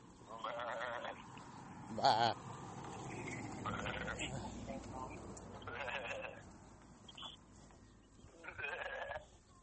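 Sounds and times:
steady outdoor rumble: 0.0 - 7.4
sheep bleating: 0.4 - 1.2, 3.6 - 4.6, 5.6 - 6.4, 8.4 - 9.3
speech: 2.0 - 2.5, 3.6 - 6.2.

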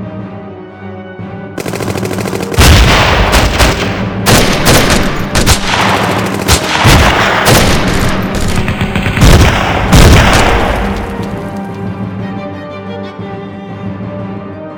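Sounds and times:
rapid machine-gun bursts: 1.6 - 11.4
dense battle gunfire: 1.6 - 11.8
heavy booming blasts of artillery: 2.5 - 11.6.

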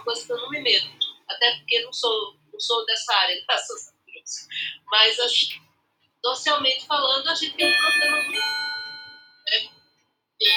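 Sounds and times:
speech: 0.0 - 5.6, 6.2 - 8.7, 9.5 - 9.7, 10.4 - 10.5
cuckoo clock chiming: 7.6 - 9.2.

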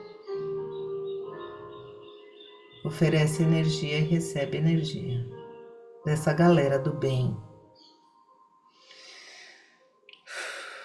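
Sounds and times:
speech: 2.9 - 5.4, 6.0 - 7.5
slow deep breath in and out: 8.7 - 10.8.

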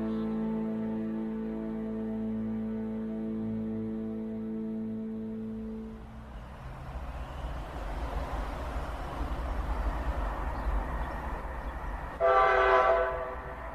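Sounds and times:
loud sustained train horn blast: 0.0 - 6.3, 12.2 - 13.7
train rumbling as it sets off after a stop for repairs: 0.0 - 13.7.

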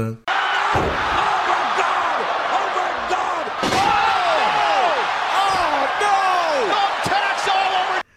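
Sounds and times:
speech: 0.0 - 1.2
many voices shouting and yelling in a football match brawl: 0.3 - 8.0
loud sharp thuds and slams in a football match brawl: 0.6 - 5.7.

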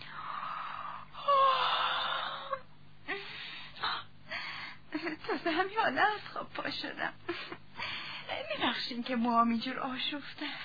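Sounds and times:
person yawning: 0.0 - 2.7
speech: 5.0 - 7.6, 8.6 - 10.6.

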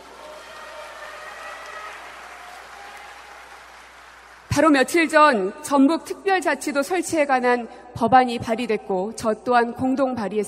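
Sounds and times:
crowd applause: 0.0 - 4.5
speech: 4.6 - 10.4.

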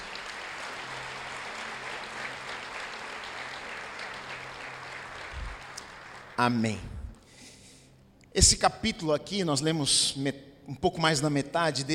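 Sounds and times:
audience applauding in a reverberant room: 0.0 - 6.8
speech: 6.4 - 7.0, 8.4 - 11.9.

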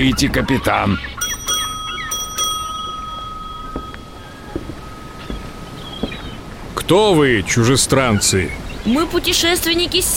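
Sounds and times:
speech: 0.0 - 1.2, 6.9 - 10.1
small hand bell ringing: 1.2 - 6.4
steady hiss: 1.6 - 10.1.

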